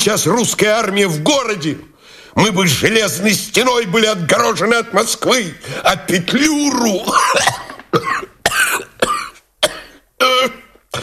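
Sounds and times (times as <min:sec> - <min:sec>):
speech: 0:00.0 - 0:08.3
furious coughing fit with harsh chesty coughs: 0:07.0 - 0:11.0
throat clearing: 0:07.1 - 0:11.0
gasping breaths: 0:10.9 - 0:11.0.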